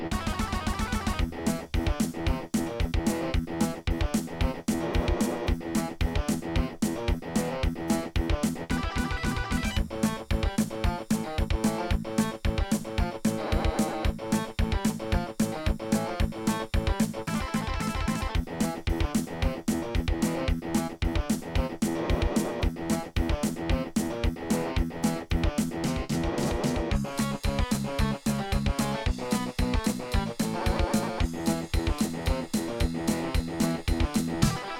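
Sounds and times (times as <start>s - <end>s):
soundcard test page sound from Logitech SoundMan Wave: 0.1s - 34.6s.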